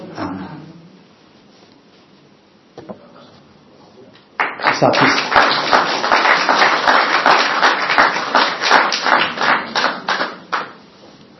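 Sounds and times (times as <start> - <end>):
group applause with many hands clapping: 4.4 - 10.9
speech: 4.8 - 5.2.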